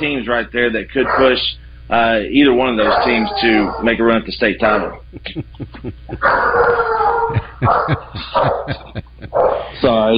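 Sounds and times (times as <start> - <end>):
speech: 0.0 - 10.1
dogs barking: 1.0 - 1.6, 2.6 - 5.0, 6.2 - 9.9
dogs howling: 1.0 - 5.0, 6.2 - 9.9
laughter: 4.7 - 10.1.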